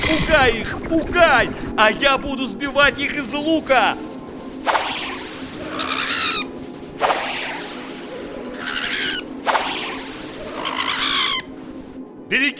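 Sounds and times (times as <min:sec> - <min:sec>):
speech: 0:00.1 - 0:04.8, 0:12.3 - 0:12.5
loud rushing whoosh of swooping birds: 0:04.6 - 0:10.7
shrill chattering bird cries: 0:05.6 - 0:06.5, 0:08.5 - 0:11.6.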